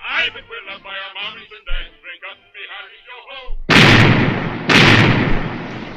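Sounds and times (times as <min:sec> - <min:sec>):
speech: 0:00.2 - 0:03.6
cannon broadside blasts: 0:03.7 - 0:05.9.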